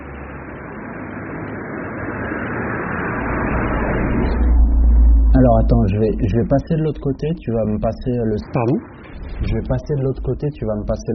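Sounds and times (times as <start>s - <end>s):
car passing by with low rumble and tire hiss: 0.0s - 5.5s
speech: 5.4s - 11.1s.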